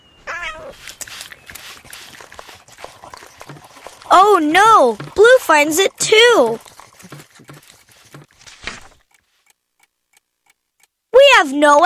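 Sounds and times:
cat meowing: 0.2s - 0.8s
scuffling and clattering: 2.2s - 9.0s
speech: 4.1s - 6.7s, 11.4s - 11.8s.

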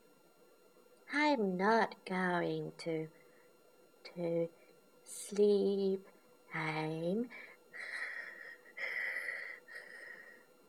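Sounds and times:
speech: 1.3s - 3.2s, 4.2s - 7.9s
wheezy snores of a child asleep: 7.8s - 10.4s.

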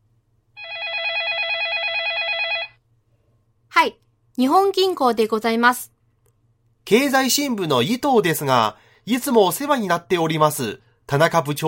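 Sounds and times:
electronic telephone ring: 0.6s - 2.8s
speech: 3.8s - 5.9s, 6.9s - 11.6s.

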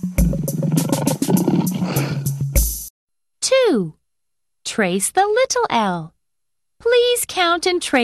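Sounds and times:
lion roaring with a deep rumbling growl: 0.2s - 2.3s
speech: 4.8s - 6.2s, 6.8s - 8.0s.

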